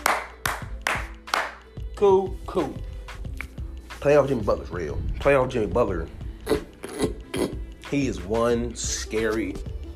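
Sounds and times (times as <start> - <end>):
sharp hand claps: 0.0 - 1.7
speech: 2.0 - 2.9, 4.0 - 6.6, 7.9 - 9.7.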